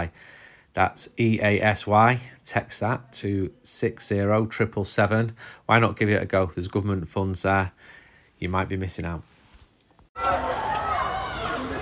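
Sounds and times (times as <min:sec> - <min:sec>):
speech: 0:00.0 - 0:09.3, 0:10.2 - 0:10.7
young football fans screaming at a stadium: 0:10.2 - 0:11.8.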